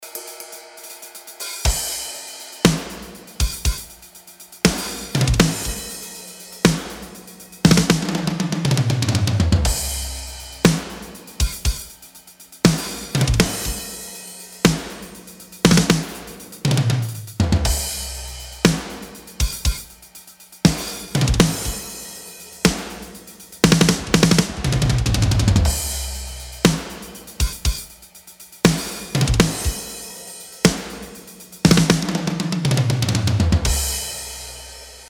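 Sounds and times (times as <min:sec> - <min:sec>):
snare drum: 0:00.0 - 0:35.0.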